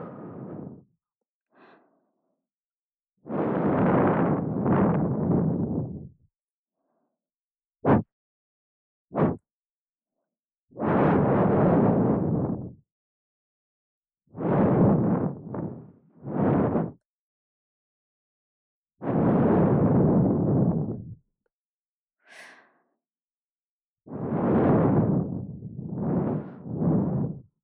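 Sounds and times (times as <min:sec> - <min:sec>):
ASMR blowing into the right ear for sleep: 0:03.3 - 0:06.1, 0:09.2 - 0:09.4, 0:10.8 - 0:12.8, 0:14.4 - 0:17.0, 0:19.0 - 0:21.1, 0:24.1 - 0:27.4.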